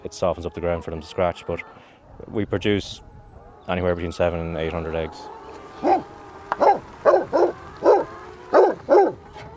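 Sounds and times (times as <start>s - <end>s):
speech: 0.1s - 3.1s, 3.7s - 6.0s
Pyrenean Mountain Dog barking on an egg farm: 5.8s - 9.2s.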